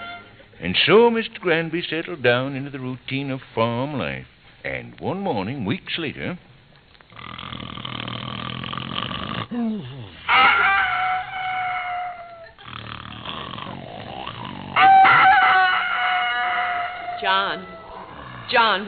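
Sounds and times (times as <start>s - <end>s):
speech: 0.6s - 6.5s, 9.5s - 10.7s, 17.2s - 17.8s, 18.5s - 18.8s
rooster crowing on a farm in the early morning: 10.3s - 12.6s, 14.8s - 18.8s.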